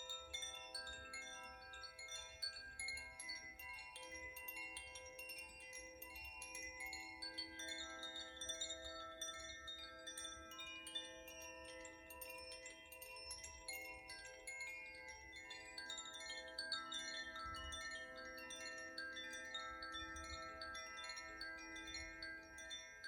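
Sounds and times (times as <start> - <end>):
Koshi and Zaphir chimes for earth and wind elements ringing: 0.0 - 23.0.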